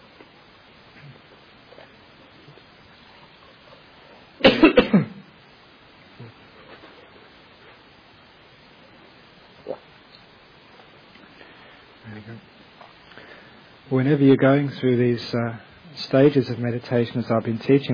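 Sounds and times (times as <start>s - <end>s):
person coughing: 4.4s - 5.2s
speech: 14.0s - 17.9s.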